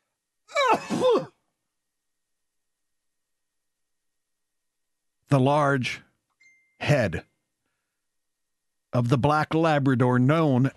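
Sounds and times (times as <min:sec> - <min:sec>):
man with a scratchy throat sneezing: 0:00.5 - 0:01.4
speech: 0:00.8 - 0:01.3, 0:05.3 - 0:06.0, 0:06.8 - 0:07.3, 0:08.9 - 0:10.7.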